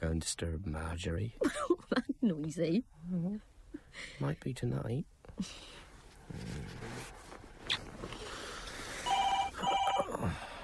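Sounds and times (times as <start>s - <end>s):
speech: 0.0s - 7.2s
soft rustling: 5.3s - 9.4s
telephone ringing at night in a home: 9.0s - 10.1s.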